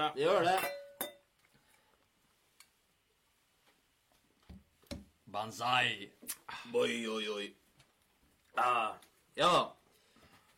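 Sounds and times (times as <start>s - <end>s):
speech: 0.0s - 0.8s, 5.3s - 7.6s, 8.6s - 9.8s
glasses clinking in a toast: 0.4s - 1.3s.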